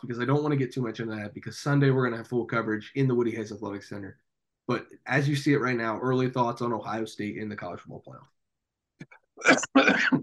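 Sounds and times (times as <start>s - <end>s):
speech: 0.0s - 8.4s, 9.0s - 10.2s
person coughing: 9.4s - 10.2s.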